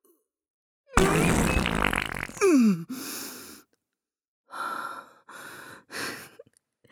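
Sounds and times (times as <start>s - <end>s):
long wet sputtering fart inside a church sanctuary: 1.0s - 2.6s.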